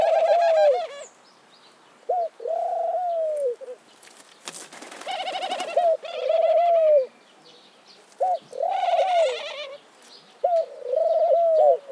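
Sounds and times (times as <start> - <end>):
Eurasian collared dove cooing: 0.0 - 1.0, 2.1 - 3.8, 4.9 - 7.1, 8.2 - 9.8, 10.4 - 11.8.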